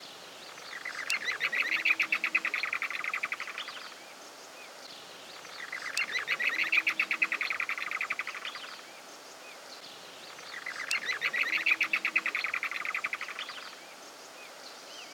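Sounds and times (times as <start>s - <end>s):
chotoy bird calling: 0.5s - 4.0s, 5.4s - 8.9s, 10.3s - 13.8s.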